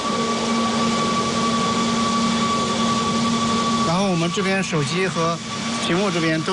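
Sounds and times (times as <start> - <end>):
electric hum from an electric car charging station starting up: 0.0 - 6.5
speech: 4.1 - 6.5.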